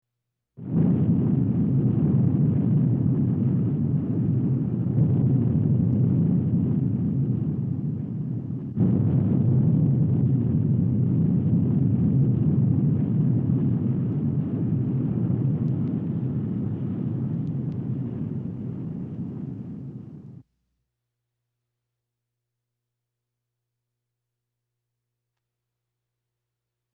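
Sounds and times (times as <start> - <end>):
series of explosions: 0.6 - 20.4.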